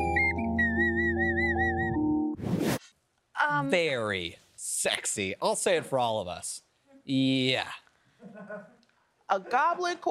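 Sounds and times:
person whistling a short wavering tune: 0.1s - 2.0s
speech: 3.5s - 8.7s, 9.3s - 10.0s.

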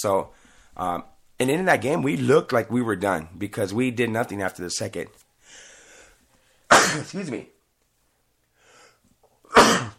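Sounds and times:
speech: 0.0s - 5.6s, 6.9s - 7.6s
loud sneeze: 6.7s - 7.2s, 9.5s - 9.9s.

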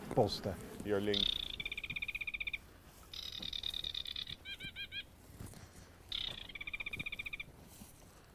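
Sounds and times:
speech: 0.2s - 1.4s
sedge warblers calling from the reeds: 0.9s - 5.2s, 6.1s - 7.5s.

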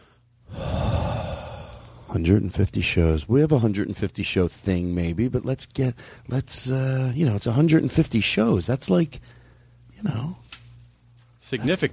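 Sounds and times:
person taking a deep breath: 0.0s - 2.1s
speech: 2.1s - 9.4s, 10.0s - 10.4s, 11.4s - 11.9s.

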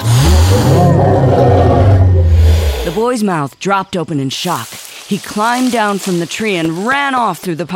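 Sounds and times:
people imitating animal roars: 0.0s - 3.0s
speech: 3.0s - 7.7s.

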